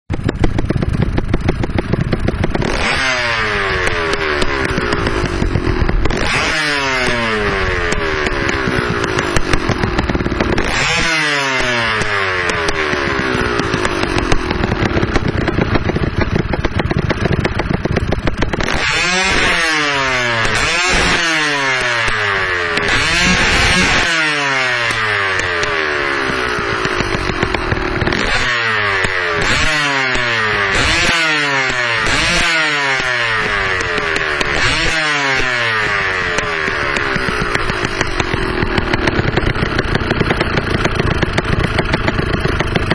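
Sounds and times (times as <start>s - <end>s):
engine exhaust: 0.0s - 42.9s.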